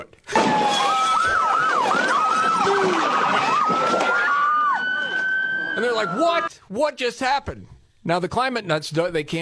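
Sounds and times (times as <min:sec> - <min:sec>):
speech: 0:00.0 - 0:00.7, 0:06.0 - 0:09.4
police car siren wailing: 0:00.4 - 0:06.5.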